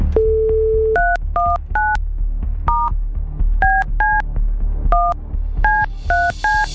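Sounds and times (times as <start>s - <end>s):
landline phone dial tone: 0.2s - 2.0s
two-note DTMF keypad beeps of a phone number being dialed: 0.2s - 2.0s, 2.7s - 2.9s, 3.6s - 4.2s, 5.0s - 6.7s.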